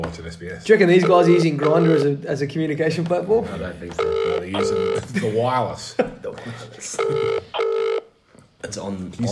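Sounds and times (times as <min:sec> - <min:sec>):
speech: 0:00.0 - 0:07.6, 0:08.6 - 0:09.3
phone call electronic ringback tones: 0:00.9 - 0:02.2, 0:04.0 - 0:05.0, 0:07.0 - 0:08.1.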